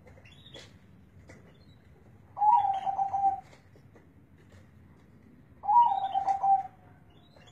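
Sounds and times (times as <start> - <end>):
local Indonesian zebra dove cooing: 2.4 - 3.6, 5.6 - 6.7.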